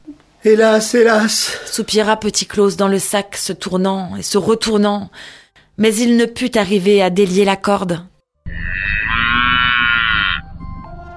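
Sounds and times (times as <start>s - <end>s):
speech: 0.4s - 8.1s
cow mooing: 8.5s - 10.4s.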